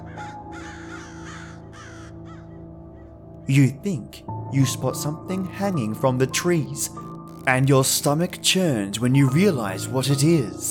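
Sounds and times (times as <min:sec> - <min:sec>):
crows cawing: 0:00.0 - 0:03.4
speech: 0:03.5 - 0:10.6.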